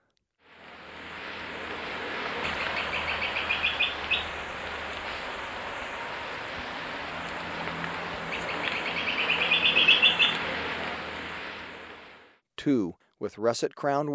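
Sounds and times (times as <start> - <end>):
hiss: 0.5 - 12.4
olive-backed woodcreeper calling: 0.6 - 12.2
speech: 12.6 - 14.1.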